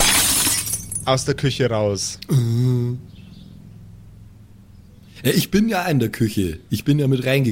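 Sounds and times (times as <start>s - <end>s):
glass shattering in a kitchen: 0.0s - 1.1s
tinkling glass shards scattering: 0.0s - 1.1s
speech: 1.0s - 3.1s, 5.2s - 7.5s.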